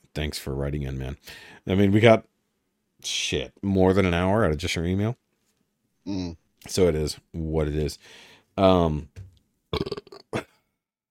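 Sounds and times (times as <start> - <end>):
speech: 0.2 - 2.3, 3.0 - 5.2, 6.0 - 10.5
loud burp into the microphone: 9.7 - 10.6.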